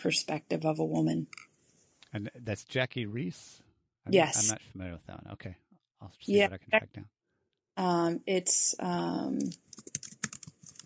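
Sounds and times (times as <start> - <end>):
speech: 0.0 - 1.5, 2.1 - 7.2, 7.8 - 10.0
laughter: 2.2 - 3.4, 4.1 - 5.5, 6.2 - 7.0
computer keyboard typing: 9.4 - 10.8.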